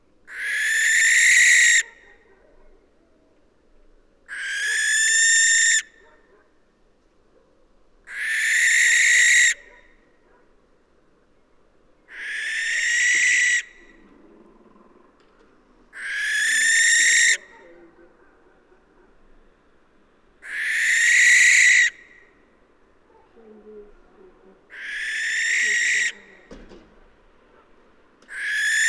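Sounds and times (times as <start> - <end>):
Western barn owl Tyto alba giving long harsh hissing screeches: 0.3 - 2.0, 4.3 - 6.0, 8.1 - 9.7, 12.1 - 13.9, 15.9 - 17.5, 20.4 - 22.2, 24.7 - 26.5, 28.3 - 28.8.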